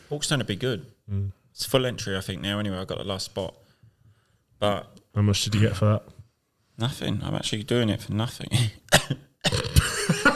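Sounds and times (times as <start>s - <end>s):
speech: 0.1s - 3.6s, 4.6s - 6.2s, 6.8s - 9.2s
person coughing harshly: 8.6s - 10.3s.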